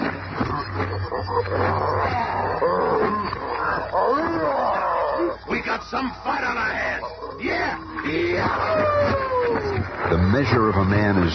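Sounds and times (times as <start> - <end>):
maddened gorilla roaring and snarling while attacking: 0.6 - 5.6, 6.6 - 10.2
speech: 0.7 - 11.3.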